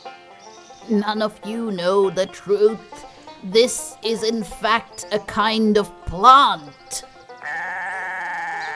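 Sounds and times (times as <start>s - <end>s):
speech: 0.9s - 7.1s
goat bleating: 7.4s - 8.7s.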